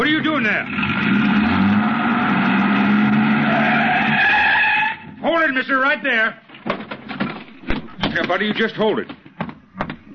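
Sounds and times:
truck engine starting and roaring: 0:00.0 - 0:05.0
truck tires screeching in a continuous skid: 0:00.0 - 0:05.2
speech: 0:00.4 - 0:01.3, 0:05.6 - 0:06.5, 0:08.2 - 0:09.2.

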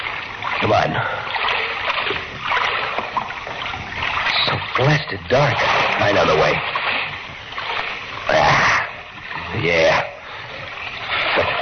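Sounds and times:
splashing while wading through waist-deep water in a dark sewer: 0:00.0 - 0:11.6
speech: 0:00.6 - 0:01.3, 0:04.8 - 0:06.8, 0:08.3 - 0:08.6, 0:09.5 - 0:10.2.

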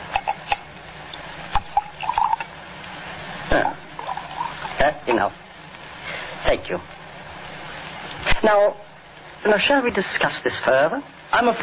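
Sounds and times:
drink being poured into a glass with gurgling: 0:01.6 - 0:02.5, 0:04.0 - 0:04.8
speech: 0:05.0 - 0:05.4, 0:06.4 - 0:07.0, 0:08.4 - 0:08.8, 0:09.4 - 0:11.6.

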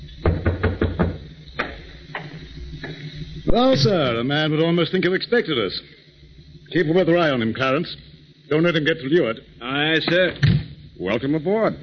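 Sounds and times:
low hum: 0:00.0 - 0:11.8
knocking on a door: 0:00.2 - 0:01.3
speech: 0:03.5 - 0:06.0, 0:06.7 - 0:11.8.

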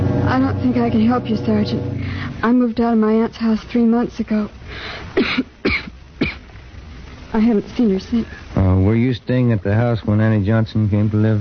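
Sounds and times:
speech: 0:00.4 - 0:05.9, 0:07.4 - 0:11.4
woman with a bad cough coughing: 0:05.2 - 0:06.5.

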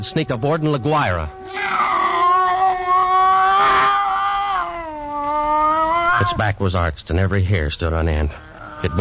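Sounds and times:
speech: 0:00.0 - 0:02.0, 0:06.2 - 0:09.0
scrawny cat yowling: 0:00.4 - 0:06.5, 0:08.3 - 0:09.0.

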